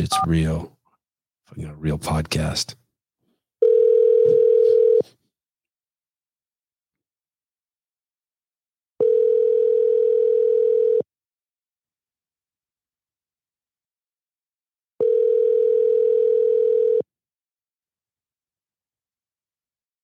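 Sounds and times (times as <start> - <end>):
speech: 0.0 - 0.8, 1.5 - 2.8
outgoing phone call ringback tone: 3.6 - 5.0, 9.0 - 11.0, 15.0 - 17.0.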